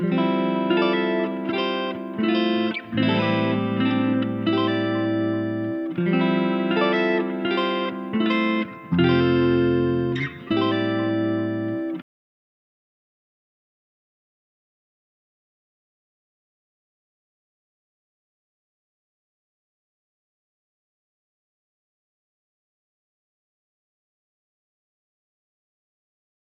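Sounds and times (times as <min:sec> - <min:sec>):
main guitar loop in C major at 80 BPM: 0:00.0 - 0:12.0.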